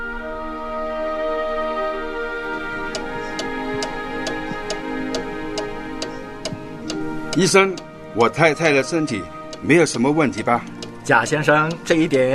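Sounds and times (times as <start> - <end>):
humming musical drone: 0.0 - 12.3
wall clock ticking: 2.9 - 12.3
speech: 7.4 - 12.3.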